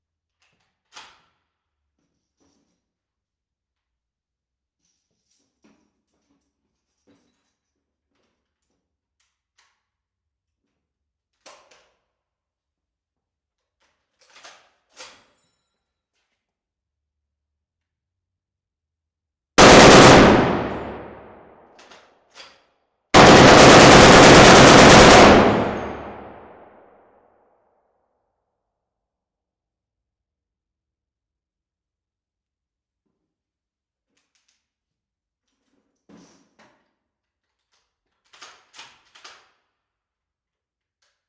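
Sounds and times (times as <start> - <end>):
Browning M2 machine gun firing in a medium warehouse: 19.6 - 21.5, 23.2 - 26.8.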